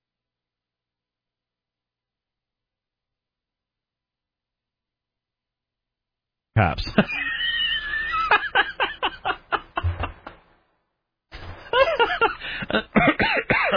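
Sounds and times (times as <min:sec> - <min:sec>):
speech: 0:06.6 - 0:07.3
laughter: 0:06.6 - 0:10.4, 0:11.4 - 0:13.7
person coughing in harsh repeated fits: 0:11.8 - 0:13.7.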